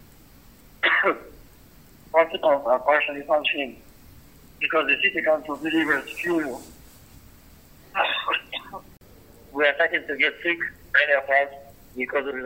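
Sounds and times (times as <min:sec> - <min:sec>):
male Red Cross worker with a cold clearing his throat: 0:00.8 - 0:01.3, 0:08.0 - 0:08.8
male Red Cross worker with a cold giving rough coughs: 0:00.8 - 0:01.3, 0:08.0 - 0:08.8
male Red Cross worker with a cold speaking in a voice message over a tinny phone-like line: 0:02.2 - 0:03.8, 0:04.6 - 0:06.6, 0:09.6 - 0:12.4.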